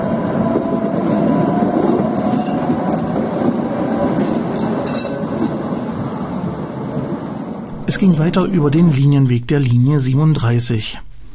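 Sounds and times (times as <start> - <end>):
tram wheels giving off high metallic squeals: 0.0 - 8.2
tram rumbling around the tight curve of a turning loop: 0.0 - 10.5
speech: 8.0 - 11.1.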